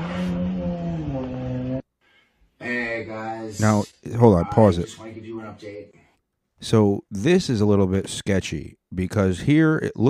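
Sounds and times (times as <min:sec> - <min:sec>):
car engine roaring while peeling out: 0:00.0 - 0:01.8
car tires screeching while accelerating: 0:00.0 - 0:01.8
speech: 0:03.0 - 0:06.0, 0:06.6 - 0:10.0.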